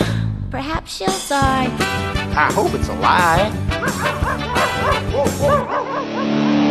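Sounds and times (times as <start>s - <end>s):
speech: 0.5s - 6.4s
dog barking: 3.8s - 6.4s.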